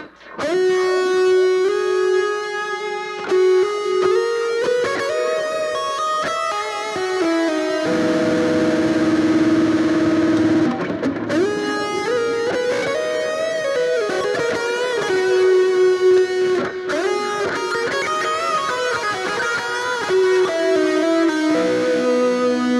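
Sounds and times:
electric guitar lead with echo delay effect: 0:00.0 - 0:22.7.

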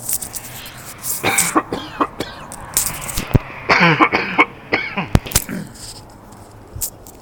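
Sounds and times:
person coughing: 0:01.2 - 0:02.5, 0:03.7 - 0:05.8
throat clearing: 0:03.7 - 0:05.9.

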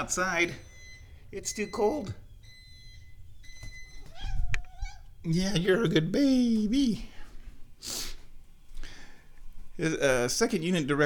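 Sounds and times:
speech: 0:00.0 - 0:00.7, 0:01.3 - 0:02.2, 0:05.2 - 0:07.1, 0:07.8 - 0:08.0, 0:09.8 - 0:11.0
house cat meowing: 0:04.0 - 0:05.2.

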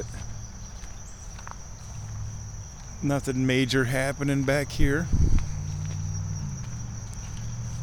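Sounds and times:
footsteps on a wooden boardwalk beside a pond: 0:00.0 - 0:03.1, 0:05.1 - 0:07.8
continuous high insect drone: 0:00.0 - 0:07.8
speech: 0:03.0 - 0:05.3.

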